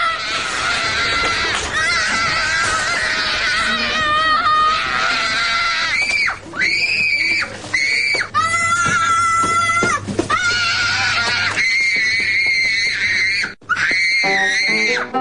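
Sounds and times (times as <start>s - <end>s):
child screaming in a supermarket tantrum: 0.0s - 15.1s.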